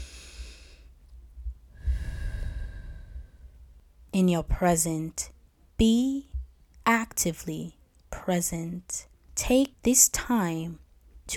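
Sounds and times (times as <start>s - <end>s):
person breathing in and out: 0.0s - 1.0s, 1.7s - 3.7s
speech: 4.2s - 6.3s, 6.9s - 11.3s.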